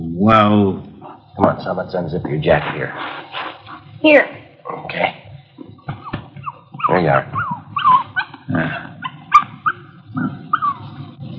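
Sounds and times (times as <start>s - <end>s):
speech: 0.2s - 5.2s, 7.0s - 7.4s
female puppy yipping and whimpering: 6.0s - 11.3s.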